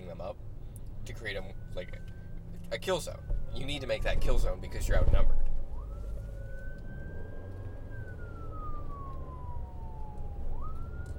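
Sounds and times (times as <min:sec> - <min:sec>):
steady low rumble of traffic: 0:00.0 - 0:11.1
speech: 0:00.1 - 0:05.4
ambulance siren wailing: 0:01.0 - 0:11.1.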